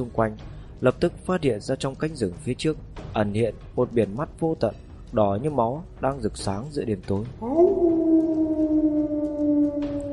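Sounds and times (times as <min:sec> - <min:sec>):
speech: 0:00.0 - 0:07.9
wolf howling in a forest at night: 0:07.4 - 0:10.1.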